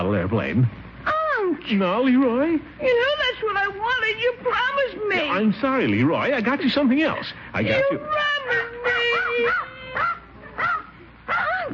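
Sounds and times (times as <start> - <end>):
speech: 0.0 - 0.9, 1.5 - 8.7
dog yelping and whining: 7.7 - 11.7.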